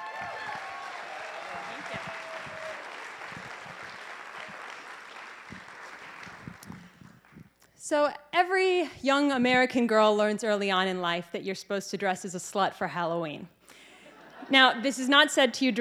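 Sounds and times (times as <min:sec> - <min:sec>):
whoops from a crowd: 0:00.0 - 0:02.9
audience applause welcoming a speaker at a talk: 0:00.0 - 0:06.6
speech: 0:07.9 - 0:13.6, 0:14.5 - 0:15.7.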